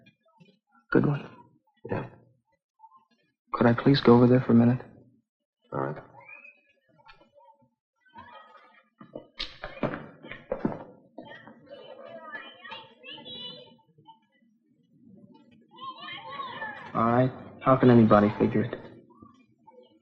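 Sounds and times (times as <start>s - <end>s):
speech: 0.9s - 2.2s, 3.6s - 4.9s, 17.7s - 18.8s
children shouting and chattering at play in a schoolyard: 5.9s - 20.0s.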